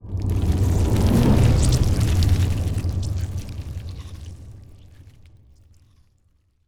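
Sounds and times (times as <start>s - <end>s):
colossus ant ship moving: 0.1s - 4.6s.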